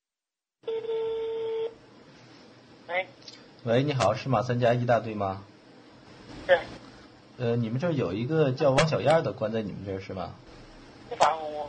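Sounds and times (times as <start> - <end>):
single steady telephone tone: 0.6 - 1.8
faint hiss of telephone line noise: 1.0 - 11.6
speech: 3.0 - 5.5, 6.5 - 6.8, 7.4 - 11.6.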